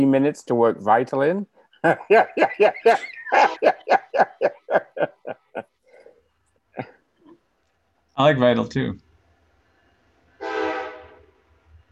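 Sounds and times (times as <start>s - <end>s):
speech: 0.0s - 4.8s, 8.2s - 9.0s
laughter: 1.8s - 5.7s
train horn blast: 10.4s - 11.4s.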